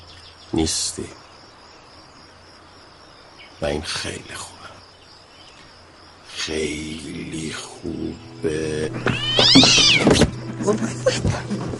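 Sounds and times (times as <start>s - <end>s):
speech: 0.5s - 1.3s, 3.6s - 4.6s, 6.4s - 11.7s
cat meowing: 9.0s - 10.3s.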